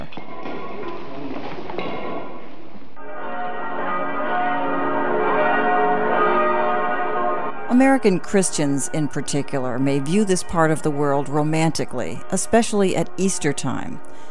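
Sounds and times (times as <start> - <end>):
church bells of the Church of the Holy Sepulchre in Jerusalem ringing: 3.0 - 14.2
speech: 7.7 - 14.2.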